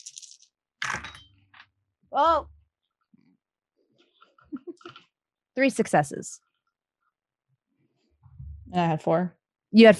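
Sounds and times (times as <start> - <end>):
dice rattling in a cup or hand: 0.0 - 0.5
dice clattering onto a hard surface: 0.0 - 1.2
speech: 2.1 - 2.6, 5.6 - 6.4, 8.7 - 9.9.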